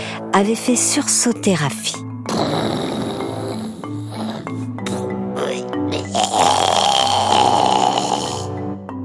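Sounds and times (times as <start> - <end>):
speech: 0.4 - 2.7
loud rumbling snoring with nasal snorts: 2.2 - 8.8.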